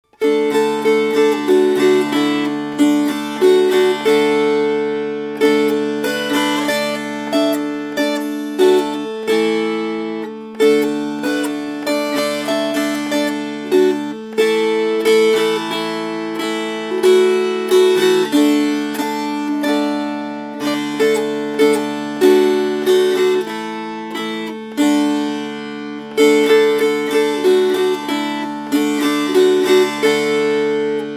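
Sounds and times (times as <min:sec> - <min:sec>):
strummed tune: 0:00.1 - 0:31.1.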